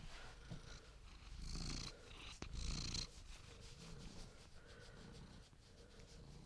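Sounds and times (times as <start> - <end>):
cat purring: 0.0 - 6.4.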